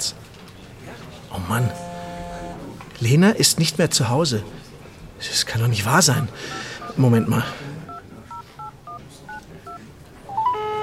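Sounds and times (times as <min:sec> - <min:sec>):
speech: 0:01.0 - 0:01.9, 0:03.0 - 0:07.7
dual-tone phone keypad beeps: 0:06.1 - 0:10.8
phone ringing tone: 0:06.1 - 0:10.8.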